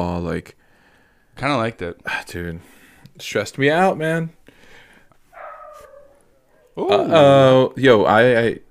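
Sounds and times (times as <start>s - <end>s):
speech: 0.0s - 0.6s, 1.4s - 4.6s, 6.8s - 8.6s
dog yipping: 5.3s - 7.1s
dog barking: 5.4s - 6.8s.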